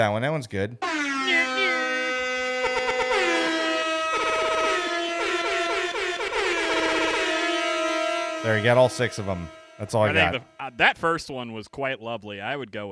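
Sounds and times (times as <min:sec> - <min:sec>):
speech: 0:00.0 - 0:01.2, 0:08.4 - 0:12.9
hip hop air horn sound effect blasts: 0:00.8 - 0:10.8.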